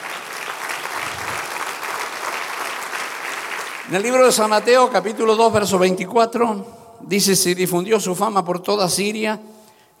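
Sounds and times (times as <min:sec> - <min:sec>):
audience applauding: 0:00.0 - 0:05.1
speech: 0:03.9 - 0:09.6.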